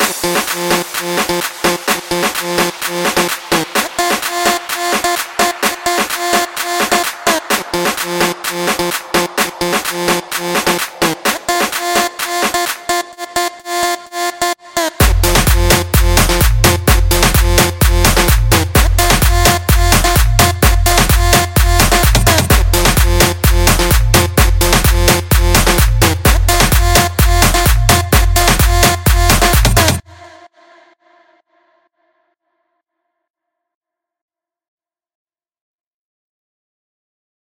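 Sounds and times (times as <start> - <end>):
full music loop in F: 0.0 - 30.1.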